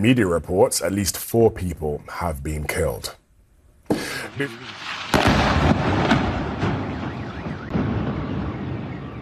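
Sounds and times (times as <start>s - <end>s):
speech: 0.0s - 3.2s, 4.4s - 6.2s
explosions from an airstrike in a port city: 4.0s - 9.2s
faint car alarm wailing: 6.6s - 9.2s.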